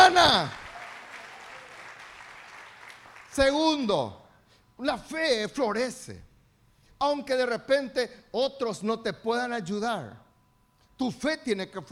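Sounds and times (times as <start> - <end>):
church congregation applause during a service: 0.0 - 3.5
speech: 0.2 - 0.6, 3.4 - 4.2, 4.8 - 6.3, 7.0 - 10.2, 11.0 - 11.9.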